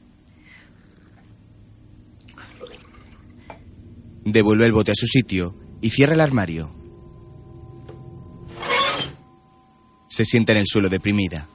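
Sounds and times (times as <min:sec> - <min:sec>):
low steady hum in a bathroom: 0:00.0 - 0:11.5
person drinking from a glass of water to swallow a pill: 0:00.7 - 0:01.4, 0:02.2 - 0:03.4
water sloshing in a glass: 0:02.2 - 0:03.5
speech: 0:04.2 - 0:06.8, 0:10.2 - 0:11.5.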